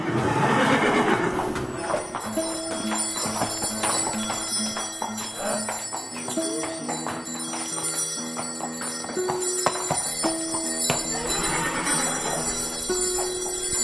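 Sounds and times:
horse whinnying while being harnessed: 0:00.0 - 0:02.1, 0:11.1 - 0:12.8
hooves clopping: 0:00.0 - 0:13.8
bells jingling: 0:01.6 - 0:13.8.

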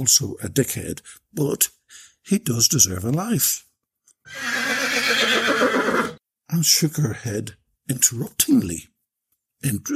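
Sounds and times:
speech: 0:00.0 - 0:03.7, 0:04.3 - 0:08.9, 0:09.6 - 0:09.9
horse neighing: 0:04.3 - 0:06.2.

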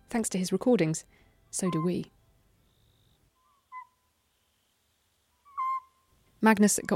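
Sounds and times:
speech: 0:00.1 - 0:02.2, 0:06.4 - 0:06.9
Cyprus scops owl calling at night: 0:01.6 - 0:04.7, 0:05.4 - 0:06.1.

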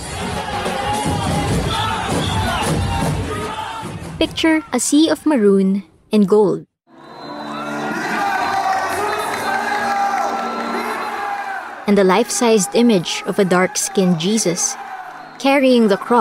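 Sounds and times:
crowd of devotees cheering and shouting at religious procession at Quiapo Church Manila: 0:00.0 - 0:04.2, 0:06.9 - 0:16.1
speech: 0:04.3 - 0:06.7, 0:11.9 - 0:16.1.

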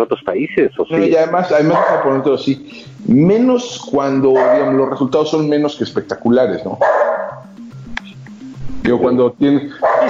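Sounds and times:
speech: 0:00.0 - 0:07.2, 0:08.8 - 0:10.0
steady stepping low musical line: 0:00.0 - 0:10.0
dog barking: 0:01.6 - 0:02.3, 0:04.1 - 0:04.9, 0:06.8 - 0:07.4, 0:09.8 - 0:10.0.

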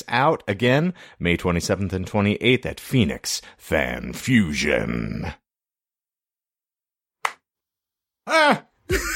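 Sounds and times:
speech: 0:00.1 - 0:05.4, 0:08.3 - 0:09.1
single sharp hand clap: 0:07.2 - 0:07.5.

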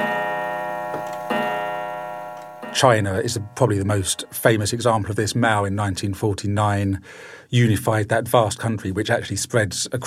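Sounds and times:
clock ticking: 0:00.0 - 0:04.6
speech: 0:02.8 - 0:10.0.

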